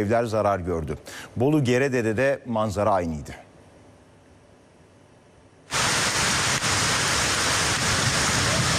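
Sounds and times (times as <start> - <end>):
speech: 0.0 - 3.4
heavy rain downpour: 5.7 - 8.7.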